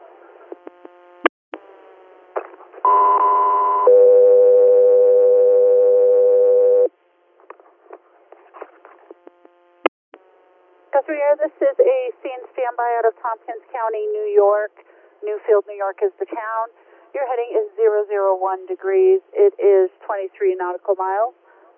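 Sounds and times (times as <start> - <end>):
crackly radio clicks and static bursts: 0.4 - 1.3
two-tone radio dispatch paging alert: 2.9 - 6.9
speech: 11.4 - 21.4.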